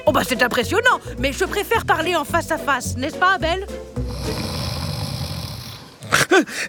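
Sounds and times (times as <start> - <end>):
speech: 0.2 - 4.6, 6.3 - 6.6
person snoring while dozing off: 4.0 - 6.5.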